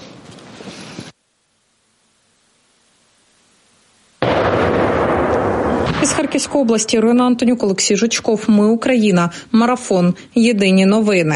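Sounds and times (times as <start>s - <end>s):
small TNT charge blast against a wooden log: 4.2s - 7.2s
speech: 6.4s - 11.3s.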